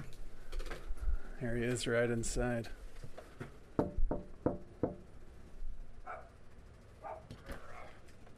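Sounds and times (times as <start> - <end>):
speech: 1.4 - 2.8
firm knocks on a door: 3.8 - 5.0
short dog barks or yips: 6.0 - 6.4, 7.0 - 7.9.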